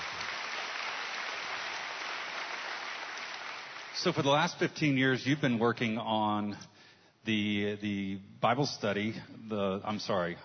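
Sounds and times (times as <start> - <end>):
crowd applauding: 0.0 - 4.5
speech: 4.0 - 10.4.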